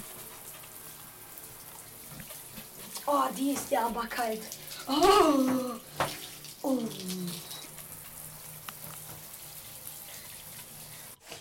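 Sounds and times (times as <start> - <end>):
shower water running: 0.0 - 11.2
speech: 3.1 - 6.1, 6.7 - 7.4.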